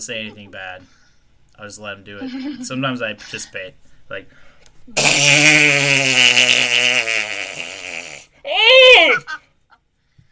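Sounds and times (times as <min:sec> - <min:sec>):
speech: 0:00.0 - 0:01.0, 0:01.6 - 0:07.8, 0:08.4 - 0:09.4
person blowing a fart noise raspberry with their voice: 0:05.0 - 0:09.0.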